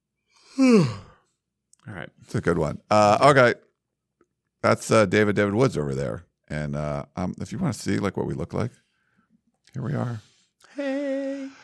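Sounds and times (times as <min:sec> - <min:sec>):
person yawning: 0:00.4 - 0:01.2, 0:10.6 - 0:11.6
speech: 0:00.6 - 0:01.0, 0:02.3 - 0:03.7, 0:04.6 - 0:08.8, 0:09.7 - 0:10.3.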